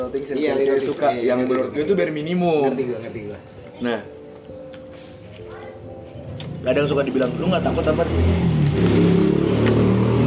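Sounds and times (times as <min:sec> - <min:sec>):
speech: 0:00.0 - 0:04.2, 0:06.6 - 0:09.2
loud motorcycle engine revving while speeding past: 0:06.5 - 0:10.2.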